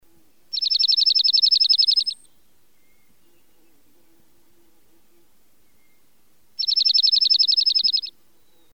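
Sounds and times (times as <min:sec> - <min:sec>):
bird trill: 0:00.5 - 0:03.5, 0:05.7 - 0:08.7.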